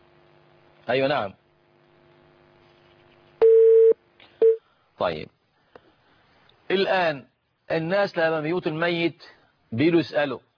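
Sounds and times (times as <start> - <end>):
speech: 0.9 - 1.4, 5.0 - 5.4, 6.7 - 10.5
telephone call signal beeps: 3.4 - 4.6.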